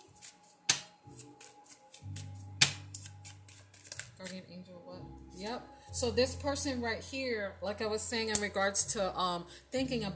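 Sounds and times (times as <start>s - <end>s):
deck of playing cards being shuffled: 0.0s - 4.4s
speech: 4.2s - 10.1s.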